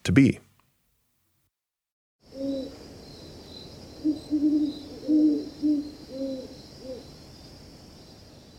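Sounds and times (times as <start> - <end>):
speech: 0.0 - 0.4
steady high hum of insects: 2.2 - 8.5
horned owls hooting in duet: 2.3 - 2.8, 4.0 - 7.1.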